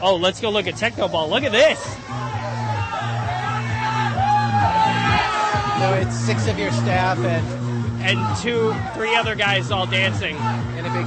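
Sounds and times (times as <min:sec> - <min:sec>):
speech: 0:00.0 - 0:02.3, 0:05.8 - 0:11.0
crowd of people around a game shouting and whooping: 0:01.4 - 0:06.9, 0:08.0 - 0:11.0.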